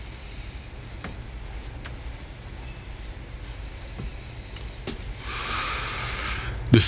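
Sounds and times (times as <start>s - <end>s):
faint clunks: 0.0s - 6.8s
heavy trucks rumbling past: 4.7s - 6.8s.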